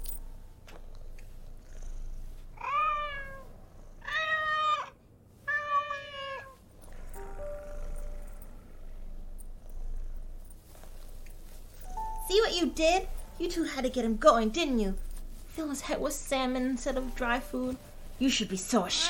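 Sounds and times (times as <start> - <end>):
low hum: 0.0 - 19.0
cat meowing: 2.6 - 6.6, 18.9 - 19.0
speech: 12.3 - 15.0, 15.6 - 19.0.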